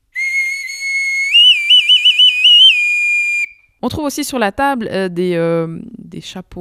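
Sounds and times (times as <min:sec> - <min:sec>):
whistle from Cuba being blown: 0:00.2 - 0:03.7
speech: 0:03.8 - 0:06.5.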